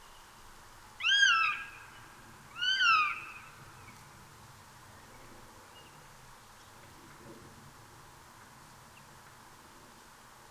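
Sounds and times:
Eurasian jay Garrulus glandarius mewing calls: 0:01.0 - 0:01.8, 0:02.6 - 0:03.5.

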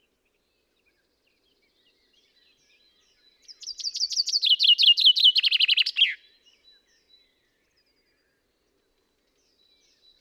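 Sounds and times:
Common chaffinch song, Fringilla coelebs: 0:00.0 - 0:10.1.

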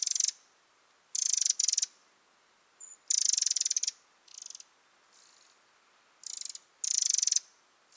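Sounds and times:
Eurasian wren churring calls: 0:01.1 - 0:01.9, 0:02.8 - 0:04.6, 0:06.2 - 0:07.4.

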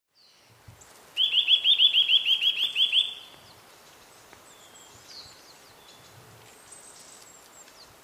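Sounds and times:
Eurasian nuthatch Sitta europaea trilling: 0:01.2 - 0:03.3.

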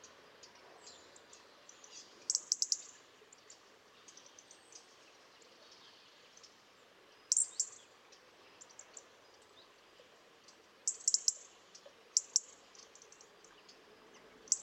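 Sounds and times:
European robin ticking calls: 0:00.0 - 0:04.9, 0:07.3 - 0:09.6, 0:10.4 - 0:14.6
background hiss: 0:00.0 - 0:14.6.

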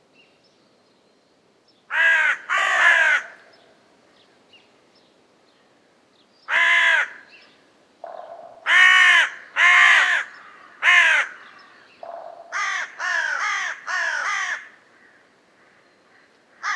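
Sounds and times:
carrion crow Corvus corone cawing: 0:01.9 - 0:03.5, 0:06.5 - 0:07.3, 0:08.0 - 0:16.7.

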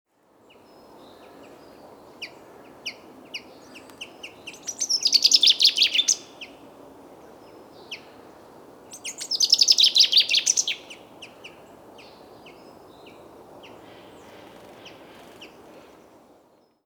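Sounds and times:
common chaffinch Fringilla coelebs chirping: 0:02.2 - 0:06.6, 0:08.9 - 0:12.6
common chaffinch Fringilla coelebs rattling song: 0:03.9 - 0:06.4, 0:08.9 - 0:11.0.

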